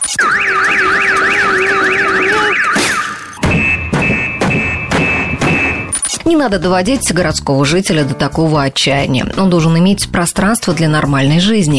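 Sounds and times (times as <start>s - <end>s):
loud car alarm with warbling wail and repeated blasts: 0.0s - 6.1s
speech: 6.4s - 11.7s.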